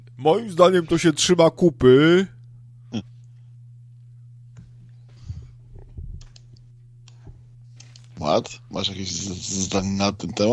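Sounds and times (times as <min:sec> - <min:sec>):
steady low electrical hum: 0:00.0 - 0:10.5
speech: 0:00.2 - 0:03.1, 0:08.2 - 0:10.5
clicks as someone searches: 0:06.2 - 0:08.1.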